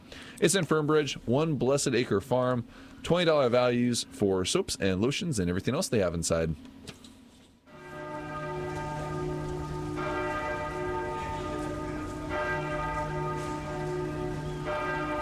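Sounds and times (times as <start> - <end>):
speech: 0.4 - 7.0
resonant church bell tolling: 7.7 - 15.2.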